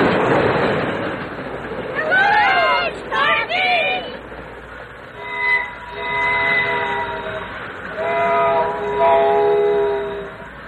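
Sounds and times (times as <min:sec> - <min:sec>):
train rumbling past very fast on rails: 0:00.0 - 0:10.6
train horn: 0:05.1 - 0:10.6.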